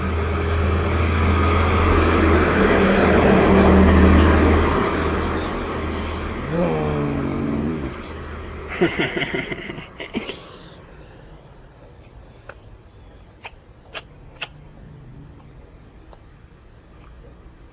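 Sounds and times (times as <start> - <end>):
big truck driving past: 0.0 - 9.8
laughter: 8.7 - 10.6.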